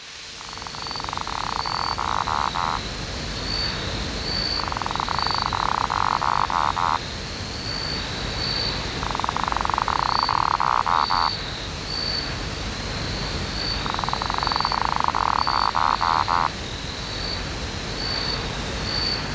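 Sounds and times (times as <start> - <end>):
constant background noise: 0.0 - 19.3
high rhythmic insect chirping: 0.2 - 19.3
Lesueur's frog Litoria lesueurii giving purring trills: 0.4 - 2.9, 4.3 - 7.1, 8.8 - 11.4, 13.6 - 16.5.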